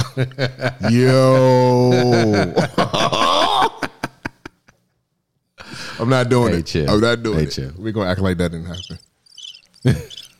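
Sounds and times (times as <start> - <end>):
laughter: 0.0 - 4.7, 9.8 - 10.2
speech: 0.2 - 3.7, 6.0 - 9.1, 9.8 - 10.2
crickets chirping: 8.7 - 10.3.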